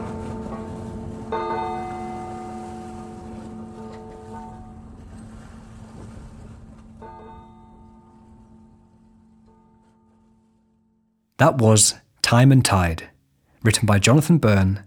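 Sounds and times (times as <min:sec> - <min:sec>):
deep bell tolling: 0:00.0 - 0:05.1
speech: 0:11.4 - 0:14.8.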